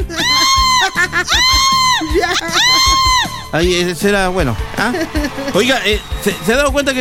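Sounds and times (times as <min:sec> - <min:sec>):
child screaming during an earthquake: 0:00.0 - 0:03.5
laughter: 0:00.0 - 0:03.6, 0:04.2 - 0:06.9
other voices and commotion: 0:00.0 - 0:06.9
speech: 0:03.5 - 0:06.9.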